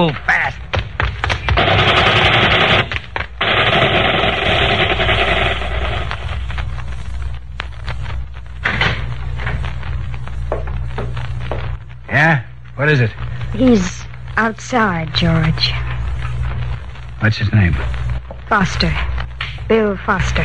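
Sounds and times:
speech: 0.0 - 0.3, 12.8 - 15.8, 17.2 - 19.1, 19.7 - 20.4
low rumble: 1.2 - 20.4
machine-gun gunfire sound effect in a gangster radio drama: 1.4 - 6.1.

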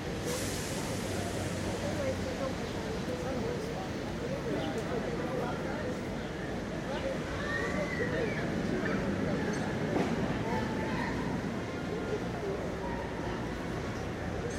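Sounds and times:
low rumble of traffic or a passing train: 0.0 - 14.5
overlapping voices and crowd chatter in a busy city park: 0.0 - 14.5.

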